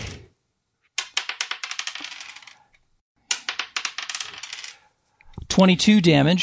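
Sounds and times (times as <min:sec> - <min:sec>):
dice clattering and rattling across a hard table: 0:01.0 - 0:02.7, 0:03.3 - 0:04.8
speech: 0:05.6 - 0:06.4.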